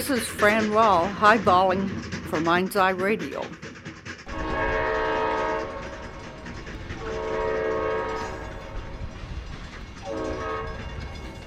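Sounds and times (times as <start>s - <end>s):
speech: 0.0s - 3.6s
rumble of a passing train: 0.0s - 11.4s
train horn blasts: 4.3s - 5.8s, 7.0s - 8.6s, 10.1s - 10.9s.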